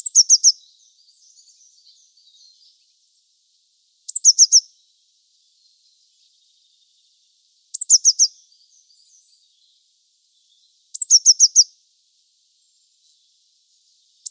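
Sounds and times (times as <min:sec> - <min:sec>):
Eurasian blue tit Cyanistes caeruleus song: 0:00.0 - 0:11.9, 0:12.5 - 0:14.3.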